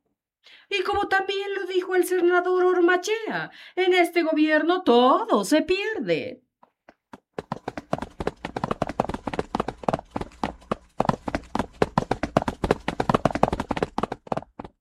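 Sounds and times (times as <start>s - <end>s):
speech: 0.7s - 6.4s
several people running across a hard floor: 6.9s - 14.7s.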